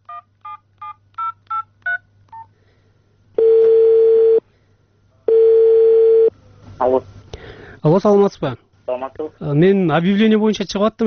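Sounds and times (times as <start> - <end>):
telephone ringing tones: 3.4 - 4.4, 5.3 - 6.3
speech: 6.8 - 7.1, 7.8 - 11.0.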